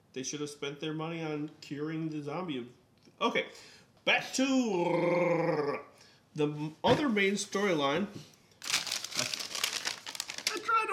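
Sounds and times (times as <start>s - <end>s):
speech: 0.2s - 8.3s
paper towel crumpling: 8.6s - 10.9s.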